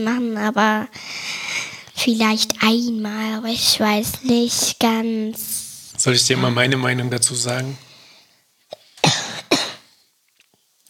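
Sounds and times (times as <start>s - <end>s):
speech: 0.0s - 1.2s, 2.0s - 7.9s
person with a slight cough coughing: 8.7s - 9.9s.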